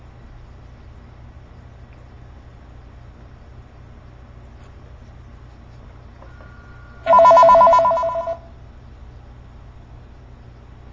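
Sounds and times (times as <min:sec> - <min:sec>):
telephone ringing with an electronic warbling trill: 0:06.2 - 0:08.5
quiet low hum: 0:06.4 - 0:08.5.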